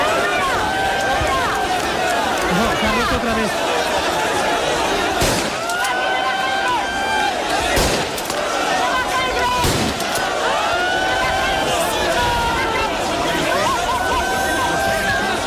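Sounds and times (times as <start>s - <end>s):
large crowd of migrants shouting and calling in chaos during a transfer: 0.0s - 15.4s
agents firing shots into the air: 5.1s - 6.0s, 7.6s - 8.8s, 9.5s - 10.4s.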